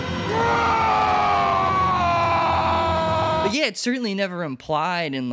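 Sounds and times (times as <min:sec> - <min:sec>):
zombie screaming in agony: 0:00.2 - 0:03.5
speech: 0:03.6 - 0:05.3.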